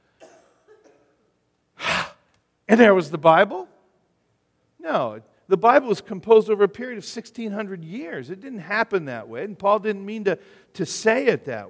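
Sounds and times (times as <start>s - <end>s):
person imitating breathing out: 1.8s - 2.3s
speech: 2.7s - 3.7s, 4.9s - 11.6s.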